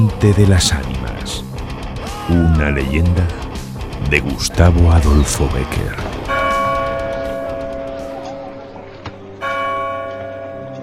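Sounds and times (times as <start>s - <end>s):
speech: 0.0s - 1.4s, 2.3s - 3.4s, 4.0s - 6.1s
church bell tolling a death knell: 6.2s - 8.8s, 9.4s - 10.8s.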